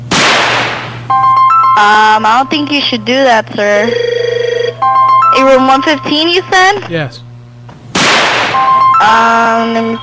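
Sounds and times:
firework bang indoors: 0.0 - 1.0, 7.9 - 8.7
low electrical hum: 0.0 - 10.0
speech: 1.8 - 4.1, 4.8 - 7.2, 8.6 - 10.0
shrill steady whistle: 8.6 - 10.0.

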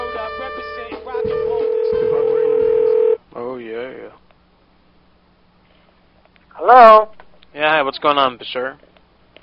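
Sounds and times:
electronic telephone tones on a studio line: 0.1 - 3.2
speech: 6.7 - 8.9.

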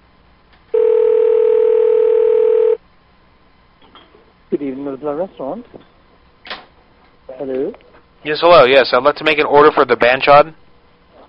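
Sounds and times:
steady telephone tone while placing a call: 0.7 - 2.8
speech: 4.9 - 6.0, 7.4 - 10.6.

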